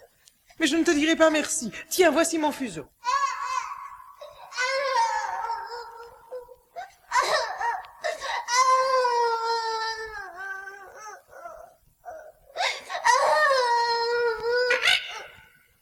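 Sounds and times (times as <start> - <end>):
speech: 0.6 - 3.0
baby crying in long wavering wails: 3.0 - 15.4.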